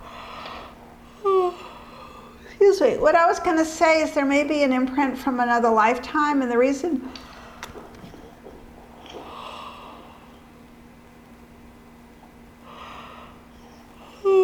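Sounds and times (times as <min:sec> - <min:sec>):
person yawning: 0:01.2 - 0:02.4, 0:14.2 - 0:14.4
speech: 0:02.7 - 0:07.2.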